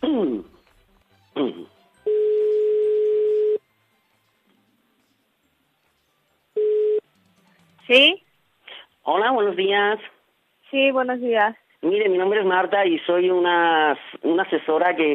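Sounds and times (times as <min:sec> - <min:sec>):
speech: 0:00.1 - 0:00.6, 0:01.4 - 0:01.7, 0:07.9 - 0:08.2, 0:09.0 - 0:15.1
telephone line ringing back while a call is being placed: 0:01.5 - 0:03.7, 0:06.6 - 0:07.1.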